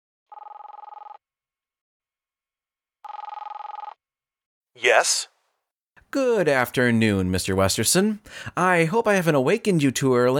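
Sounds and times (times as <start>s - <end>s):
telephone ringing on the line after a number is dialed: 0.3s - 1.2s, 3.1s - 4.0s
speech: 4.8s - 5.3s, 6.1s - 10.3s.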